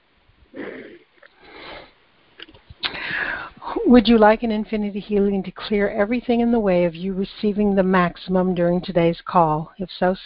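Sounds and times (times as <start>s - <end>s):
sniffing intakes: 0.5s - 3.6s
deep breaths drawn in during a guided energy-healing call: 0.6s - 2.0s, 2.8s - 3.6s
speech: 3.9s - 10.2s.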